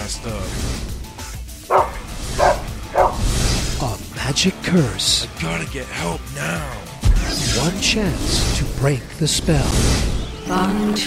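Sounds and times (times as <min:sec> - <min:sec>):
speech: 0:00.1 - 0:00.8, 0:04.3 - 0:06.8, 0:07.4 - 0:11.0
dog barking: 0:01.7 - 0:03.3.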